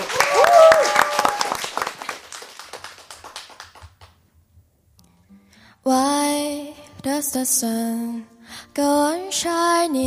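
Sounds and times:
voices cheering: 0:00.0 - 0:01.9
crowd applauding: 0:00.0 - 0:04.2
speech: 0:05.9 - 0:06.1, 0:07.0 - 0:10.0.

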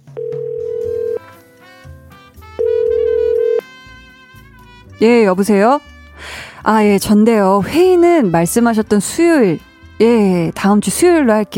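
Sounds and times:
telephone ringback tone: 0:00.0 - 0:01.2, 0:02.6 - 0:03.6
faint music: 0:00.1 - 0:11.5
speech: 0:05.0 - 0:11.5.

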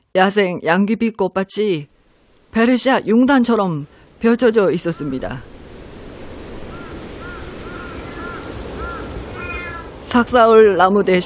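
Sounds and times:
wind rushing through the trees: 0:00.0 - 0:11.2
speech: 0:00.2 - 0:05.6, 0:10.1 - 0:11.2
crows cawing in a forest: 0:06.6 - 0:10.0.

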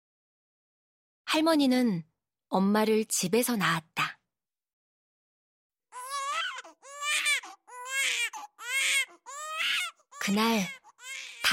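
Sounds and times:
speech: 0:01.3 - 0:04.2, 0:10.3 - 0:10.8
newborn baby crying in loud wailing bursts: 0:05.9 - 0:11.5
newborn baby gasping: 0:06.0 - 0:10.0, 0:10.6 - 0:11.4.

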